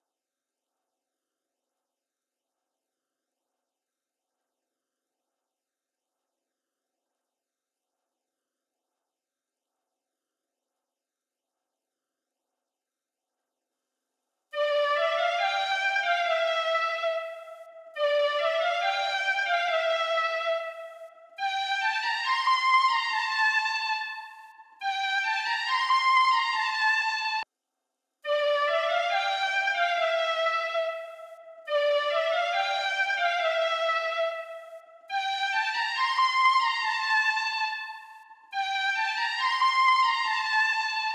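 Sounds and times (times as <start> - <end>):
D minor drill flute melody loop at 140 BPM: 14.6 - 27.4, 28.3 - 41.1.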